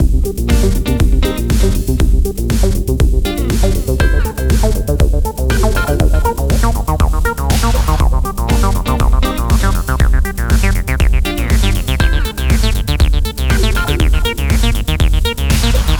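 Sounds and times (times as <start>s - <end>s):
disco music: 0.0s - 15.9s
drums: 0.0s - 15.9s.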